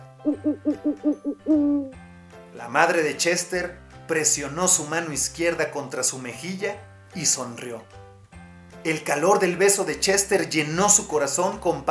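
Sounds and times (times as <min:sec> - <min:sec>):
owl hooting: 0:00.2 - 0:02.0
speech: 0:00.2 - 0:08.0, 0:08.8 - 0:11.8.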